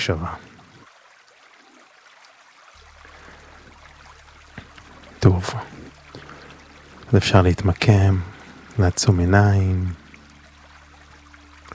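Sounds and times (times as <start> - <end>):
speech: 0.0 - 0.5, 7.1 - 10.0
flowing water: 0.0 - 11.7
low hum: 2.8 - 11.7.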